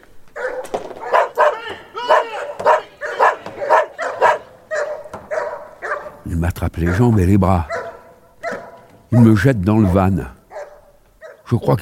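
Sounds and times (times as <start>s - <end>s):
dogs barking: 0.3s - 11.6s
speech: 6.3s - 7.8s, 9.1s - 10.4s, 11.5s - 11.8s.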